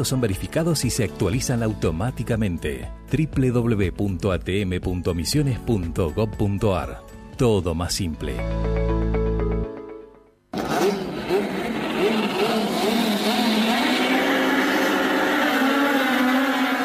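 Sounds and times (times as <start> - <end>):
speech: 0.0 - 9.2
touring race cars racing and revving: 10.6 - 16.8.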